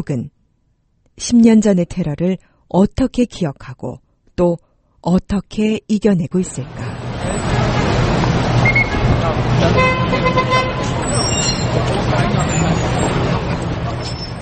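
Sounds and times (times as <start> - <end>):
speech: 0.0 - 0.3, 1.2 - 8.6, 9.3 - 14.2
idling and crawling traffic in a city street jam: 6.4 - 14.4
faint babble of crowd voices: 6.8 - 14.4
car horns honking: 7.0 - 13.5.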